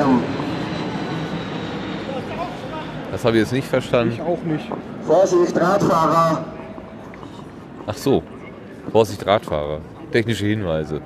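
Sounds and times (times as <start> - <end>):
airplane flying overhead: 0.0 - 8.8
faint murmuring voices: 0.0 - 11.0
speech: 3.2 - 6.6, 7.9 - 8.3, 8.9 - 11.0.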